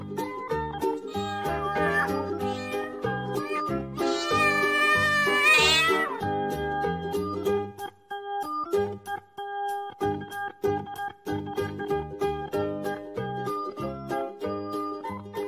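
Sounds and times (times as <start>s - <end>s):
bouncy musical backing: 0.0s - 15.4s
cat meowing: 1.1s - 6.2s.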